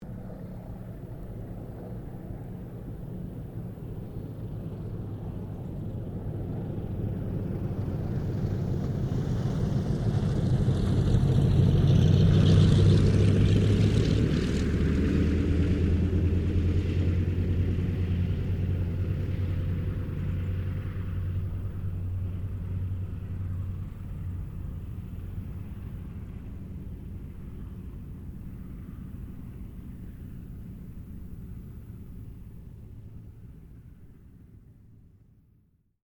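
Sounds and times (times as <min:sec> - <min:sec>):
Douglas DC3 aircraft landing: 0:00.0 - 0:35.4.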